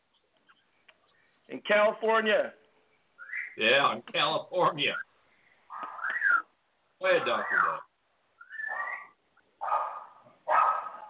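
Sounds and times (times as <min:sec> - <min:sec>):
speech: 0:01.5 - 0:02.6, 0:03.6 - 0:05.1, 0:07.0 - 0:07.9
Terrapoo dog barking: 0:08.5 - 0:11.0.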